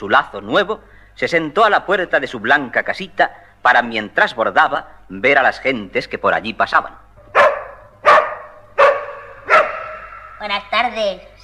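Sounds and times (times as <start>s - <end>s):
speech: 0.0s - 7.4s, 10.4s - 11.4s
dog barking: 7.3s - 10.4s.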